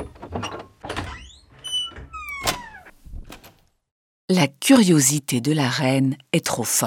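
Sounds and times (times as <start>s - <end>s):
door creaking open with squeals: 0.0s - 3.7s
speech: 4.3s - 6.8s.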